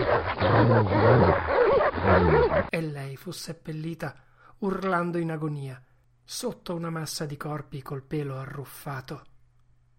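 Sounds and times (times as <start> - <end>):
huskies growling and snarling: 0.0 - 2.7
speech: 0.2 - 9.3.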